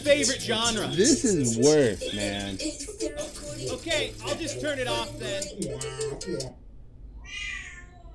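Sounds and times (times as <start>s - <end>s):
speech: 0.0s - 6.6s
low hum: 0.0s - 8.1s
cat meowing: 7.2s - 8.1s.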